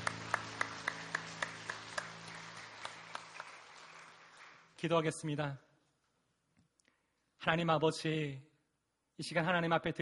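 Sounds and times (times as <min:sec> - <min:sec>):
audience clapping in unison in a reverberant room: 0:00.0 - 0:05.4
speech: 0:04.8 - 0:05.7, 0:07.4 - 0:08.5, 0:09.2 - 0:09.9.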